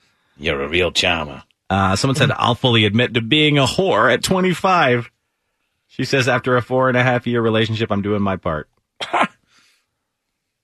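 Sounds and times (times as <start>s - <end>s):
speech: 0.4s - 5.2s, 5.9s - 9.2s
quick sharp sneeze: 9.0s - 9.4s.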